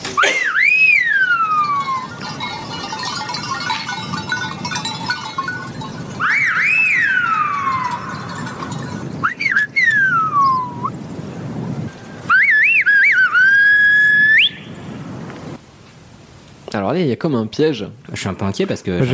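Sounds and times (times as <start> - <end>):
steady hiss: 0.0 - 19.1
Silbo gomero whistled language echoing in a valley: 0.4 - 2.1, 6.2 - 8.2, 9.2 - 10.9, 12.3 - 14.7
speech: 16.9 - 19.1.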